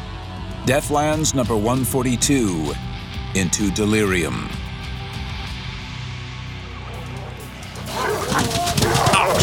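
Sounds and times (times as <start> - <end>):
speech: 0.7 - 4.6
attacking dogs barking and yelping: 6.8 - 9.4.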